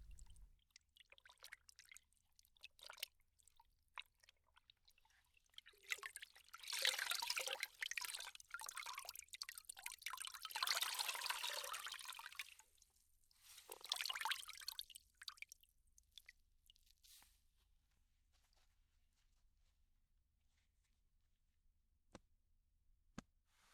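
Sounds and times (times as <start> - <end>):
water splashing and trickling as a towel is soaked in hot water: 0.0 - 16.8.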